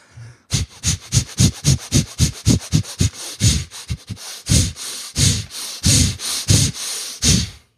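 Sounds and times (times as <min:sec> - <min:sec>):
person doing chaotic arrhythmic breathwork through the nose and mouth: 0:00.0 - 0:07.7.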